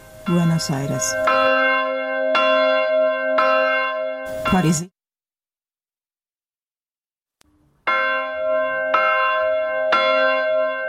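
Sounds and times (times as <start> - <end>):
Armenian church bells ringing: 0.2 - 4.9, 7.8 - 10.8
speech: 0.3 - 1.7, 4.5 - 5.0.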